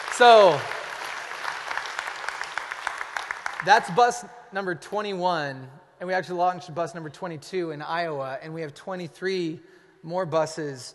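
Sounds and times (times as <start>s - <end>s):
audience at a church gathering clapping: 0.0s - 4.2s
speech: 0.2s - 0.8s, 3.6s - 10.9s.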